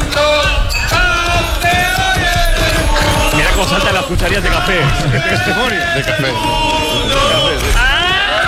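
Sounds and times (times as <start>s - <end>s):
crowd yelling and cheering indoors in a bar: 0.0s - 8.4s
laughter: 1.3s - 8.4s
speech: 4.1s - 8.0s.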